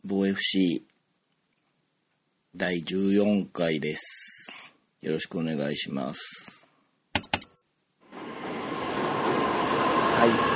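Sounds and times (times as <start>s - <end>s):
speech: 0.1s - 0.9s, 2.6s - 4.3s, 5.0s - 6.6s, 10.2s - 10.5s
train moving through a station: 8.1s - 10.5s.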